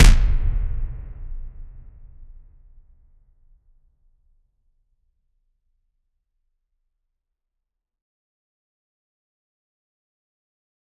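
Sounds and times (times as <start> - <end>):
boxing punch: 0.0 - 2.1.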